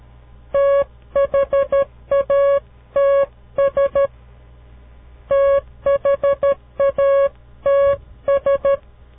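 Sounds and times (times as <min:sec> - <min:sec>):
Morse code electronic beeps: 0:00.6 - 0:04.1, 0:05.3 - 0:08.8.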